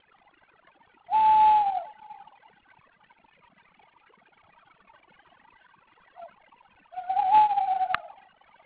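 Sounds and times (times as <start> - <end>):
tawny owl: 1.1 - 2.5, 6.0 - 8.5.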